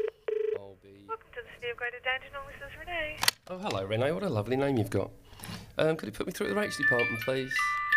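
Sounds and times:
telephone ringback tone on an outgoing call to the local council: 0.0 - 0.6
speech: 1.6 - 7.8.

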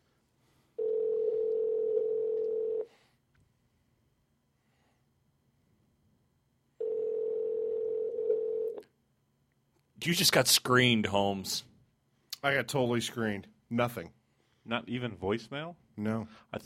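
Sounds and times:
ringback tone on an outgoing telephone call: 0.8 - 2.9, 6.8 - 8.8
speech: 10.0 - 11.7, 12.4 - 16.6.

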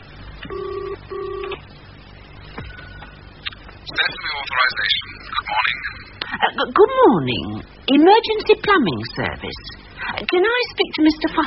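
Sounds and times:
telephone ringing tone on a call to an emergency plumbing service: 0.5 - 1.6
speech: 4.0 - 11.4.

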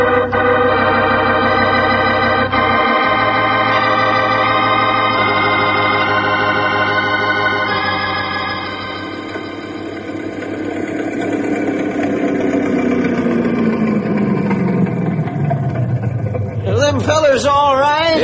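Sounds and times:
speedboat engine roaring past: 0.0 - 17.0
burst of voices: 16.6 - 18.2.

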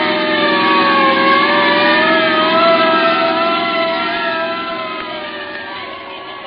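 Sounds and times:
police car engine revving: 0.0 - 6.4
police car siren wailing: 0.0 - 6.4.

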